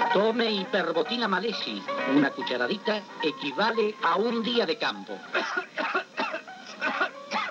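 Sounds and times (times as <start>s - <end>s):
speech: 0.1s - 5.9s
person coughing: 5.4s - 7.4s.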